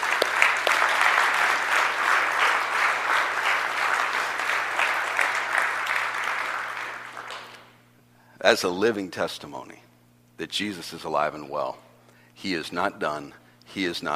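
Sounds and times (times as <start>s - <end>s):
large crowd applauding in Akron Ohio: 0.0s - 7.8s
speech: 8.4s - 11.8s, 12.4s - 14.1s.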